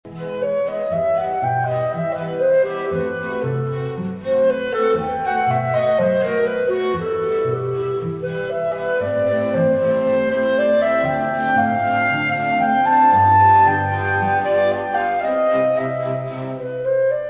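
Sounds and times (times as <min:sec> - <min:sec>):
clarinet quintet music: 0:00.1 - 0:17.2.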